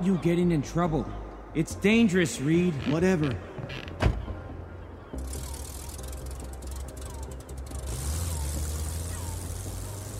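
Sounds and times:
speech: 0.0s - 4.0s
mechanical clicking: 5.2s - 10.1s
car engine starting up into a steady low rumble: 5.3s - 10.1s.

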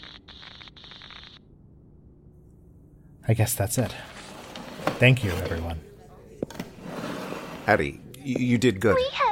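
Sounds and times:
harsh radio static from solar interference crackling: 0.0s - 1.4s
speech: 3.2s - 4.2s, 5.0s - 5.9s, 7.7s - 9.2s.

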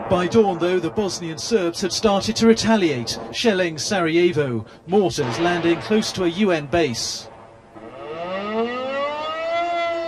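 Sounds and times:
speech: 0.1s - 7.3s
air raid warning sirens wailing across a city: 7.8s - 10.0s.

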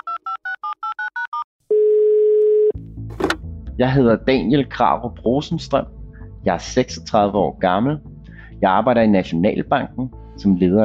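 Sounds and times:
steady low telephone ringing tone: 0.0s - 2.8s
speech: 3.8s - 10.8s.

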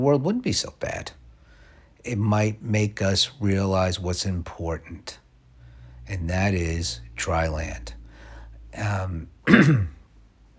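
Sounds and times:
speech: 0.0s - 1.2s, 2.0s - 5.2s, 6.1s - 8.0s, 8.7s - 10.0s
gravelly throat clearing: 9.4s - 10.0s.

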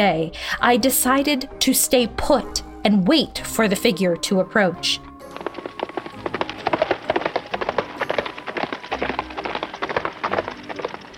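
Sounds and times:
speech: 0.0s - 5.1s
hooves of a galloping horse: 5.0s - 11.1s.

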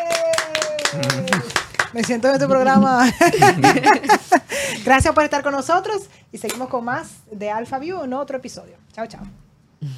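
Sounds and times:
hands clapping: 0.0s - 2.2s
speech: 0.9s - 9.9s
laughter: 2.9s - 4.5s.

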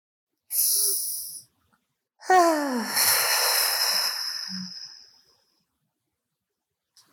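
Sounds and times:
deep inhale during a mindfulness meditation: 2.4s - 5.2s.

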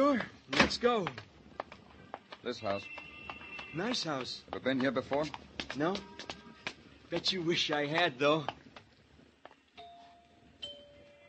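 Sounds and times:
faint noise: 0.0s - 11.2s
speech: 0.1s - 1.3s, 2.4s - 3.0s, 3.7s - 6.3s, 7.1s - 8.6s
house doorbell two-note ding-dong chime: 9.8s - 11.2s.

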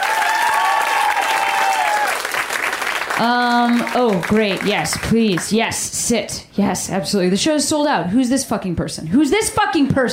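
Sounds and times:
crowd applauding: 0.0s - 5.5s
speech: 3.2s - 10.1s.

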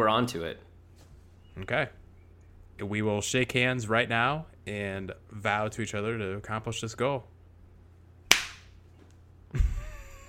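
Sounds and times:
speech: 0.0s - 0.7s, 1.6s - 2.0s, 2.8s - 7.3s
hand slapping a face: 8.3s - 8.7s.

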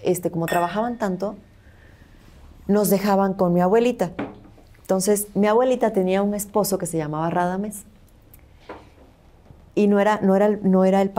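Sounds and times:
speech: 0.0s - 1.5s, 2.7s - 4.2s, 4.9s - 7.9s, 9.8s - 11.1s
glasses clinking in a toast: 0.5s - 1.2s.

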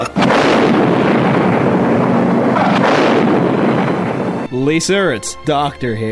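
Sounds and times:
bomb explosion: 0.0s - 4.9s
speech: 4.7s - 6.1s.

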